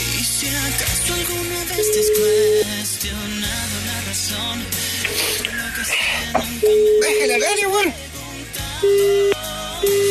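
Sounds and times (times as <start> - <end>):
speech: 0.7 - 8.0, 8.8 - 10.0
telephone busy tone after a call is hung up: 1.8 - 2.7, 6.6 - 7.4, 8.8 - 10.0.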